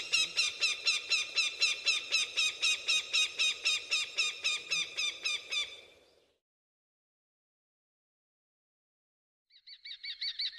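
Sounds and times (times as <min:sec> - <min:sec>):
falcon cackling and wailing calls: 0:00.0 - 0:05.9.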